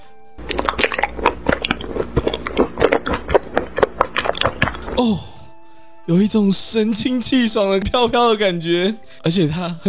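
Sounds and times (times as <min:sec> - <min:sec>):
crunchy chewing of a small pomelo-scented pill: 0:00.4 - 0:05.1
wet squishy mouth sounds: 0:00.4 - 0:05.3
speech: 0:05.0 - 0:05.3, 0:06.1 - 0:09.8.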